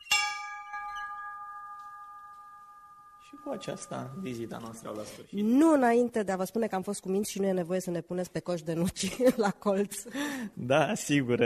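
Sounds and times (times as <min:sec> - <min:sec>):
school bell ringing for children's recess: 0:00.0 - 0:05.1
speech: 0:03.3 - 0:11.4.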